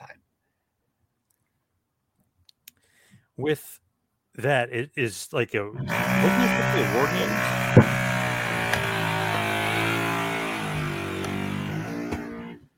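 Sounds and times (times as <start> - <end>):
speech: 3.4 - 3.8, 4.4 - 7.6
power drill drilling in the ceiling overhead: 5.8 - 12.6
sharp knock: 7.6 - 8.2.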